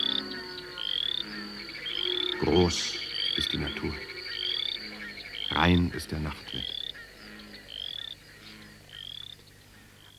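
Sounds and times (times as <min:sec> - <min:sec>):
bullfrogs croaking at night over a steppe plain: 0:00.0 - 0:10.1
cicadas chirping in high-pitched trills: 0:00.0 - 0:10.1
speech: 0:02.4 - 0:04.1, 0:05.5 - 0:06.8.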